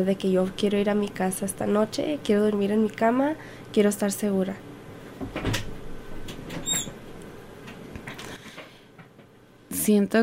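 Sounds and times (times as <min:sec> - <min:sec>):
speech: 0:00.0 - 0:05.7, 0:09.8 - 0:10.2
chair creaking and shifting: 0:05.2 - 0:07.1
brief high-pitched chair squeak: 0:06.6 - 0:06.9.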